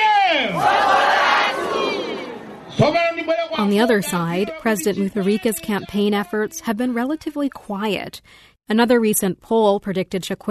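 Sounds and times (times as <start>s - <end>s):
large crowd of supporters roaring and chanting at election campaign rally: 0.0s - 3.0s
speech: 3.6s - 10.4s.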